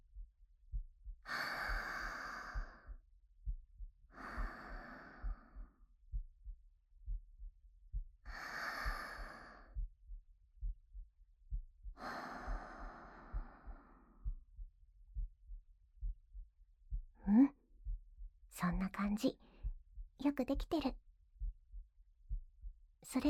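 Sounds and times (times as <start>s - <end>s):
soft steady low heartbeat thumping: 0.0s - 23.2s
deep breathing in and out while held in an embrace: 1.2s - 3.0s, 4.1s - 5.9s, 8.2s - 9.9s, 11.8s - 14.6s
speech: 19.0s - 19.4s, 20.2s - 21.0s, 23.0s - 23.2s.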